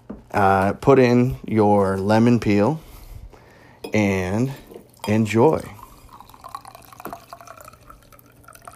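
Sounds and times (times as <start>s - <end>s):
speech: 0.4s - 2.9s, 3.8s - 5.8s
cocktail poured from a chilled shaker over a large ice rock: 4.8s - 8.7s.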